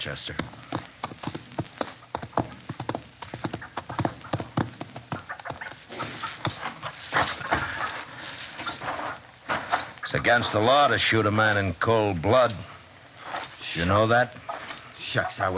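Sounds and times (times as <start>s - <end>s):
speech: 0.0s - 1.4s, 10.1s - 12.7s, 13.6s - 14.4s, 15.0s - 15.5s
outdoor rustling: 0.0s - 15.5s
horse hooves clip-clopping: 0.3s - 7.7s.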